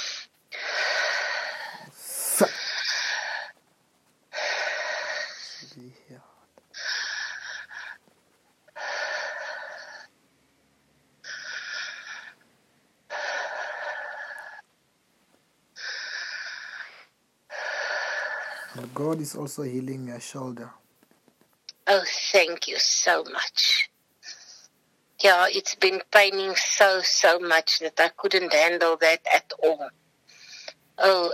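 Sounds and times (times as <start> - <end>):
heavy breathing in and out: 0.0 - 3.6, 4.3 - 8.1, 8.7 - 10.1, 11.2 - 12.4, 13.1 - 14.6, 15.8 - 19.2
speech: 2.4 - 2.6, 18.8 - 20.8, 21.9 - 23.8, 25.2 - 30.0, 31.0 - 31.3.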